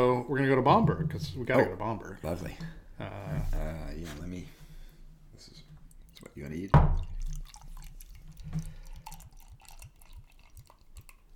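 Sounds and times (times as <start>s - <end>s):
speech: 0.0s - 4.6s, 5.4s - 5.6s, 6.3s - 7.1s
faint drips: 5.4s - 11.3s
Schlenkerla Erle beer glugging into a glass: 5.9s - 11.3s.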